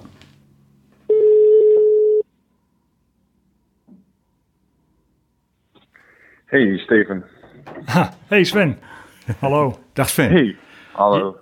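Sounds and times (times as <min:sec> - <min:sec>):
low hum: 0:00.0 - 0:11.4
electronic ringback tone of an outgoing phone call: 0:01.1 - 0:02.2
speech: 0:06.5 - 0:11.4.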